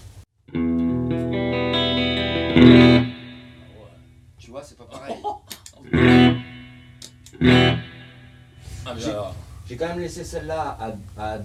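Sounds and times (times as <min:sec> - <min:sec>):
sustained effects-laden electric tone washed in reverb: 0:00.5 - 0:04.0, 0:05.9 - 0:08.7
speech: 0:02.6 - 0:03.1, 0:08.9 - 0:11.4
laughter: 0:04.9 - 0:05.9.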